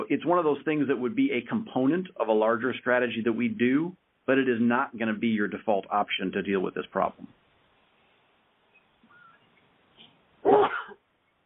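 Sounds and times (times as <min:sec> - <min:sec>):
speech: 0:00.0 - 0:07.4
sharp loud sneeze: 0:10.4 - 0:11.0.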